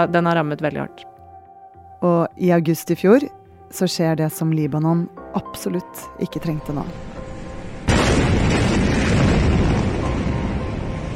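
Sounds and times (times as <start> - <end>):
speech: 0.0 - 1.1, 2.0 - 7.2
massive explosion at a harbour: 7.8 - 11.1.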